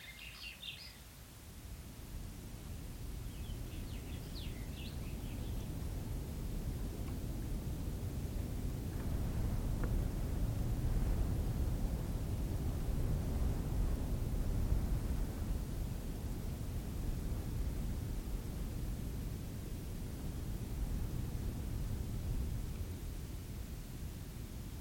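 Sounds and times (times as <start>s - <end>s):
faint bird chirps: 0.0s - 1.1s, 3.3s - 5.7s
wind sweeping across open desert in the Namib desert: 0.0s - 24.7s.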